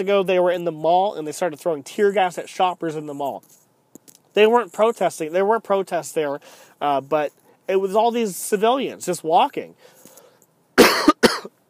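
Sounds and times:
speech: 0:00.0 - 0:03.6, 0:04.4 - 0:10.0
person with a cold coughing: 0:10.8 - 0:11.6.

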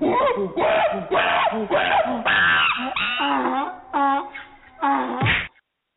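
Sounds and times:
wailing bray-like cries: 0:00.1 - 0:05.2
comedic cartoon punch and whack sound effect: 0:05.2 - 0:05.5.

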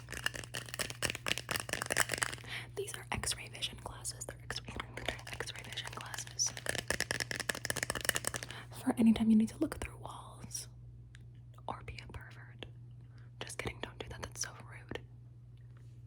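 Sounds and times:
plastic Ziploc bag crinkling while opened and handled: 0:00.0 - 0:03.3, 0:04.8 - 0:08.7
person whispering softly: 0:02.5 - 0:06.8, 0:11.7 - 0:12.7, 0:13.4 - 0:15.0
speech: 0:09.0 - 0:09.9.

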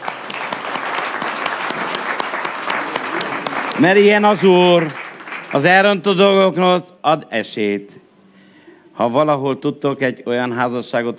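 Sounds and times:
audience applauding: 0:00.0 - 0:06.1
speech: 0:03.8 - 0:08.0, 0:09.0 - 0:11.1.

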